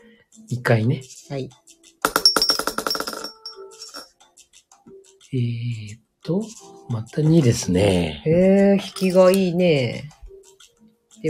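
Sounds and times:
speech: 0.3 - 1.8, 5.3 - 10.2
dice rolling on a hard table: 2.1 - 4.0.

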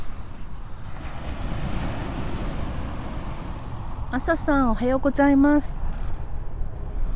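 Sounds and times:
ocean waves breaking on shore: 0.0 - 4.8
speech: 4.1 - 5.8.

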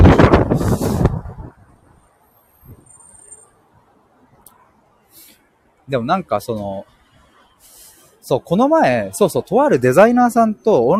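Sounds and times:
wind buffeting the microphone outdoors in a rumbling gust: 0.0 - 2.9
faint rustle of wind: 0.0 - 10.9
speech: 5.9 - 7.0, 8.3 - 10.9.

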